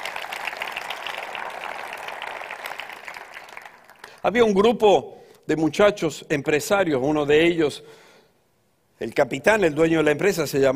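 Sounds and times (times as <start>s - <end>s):
church audience applauding: 0.0s - 4.3s
speech: 4.2s - 8.0s, 9.0s - 10.7s.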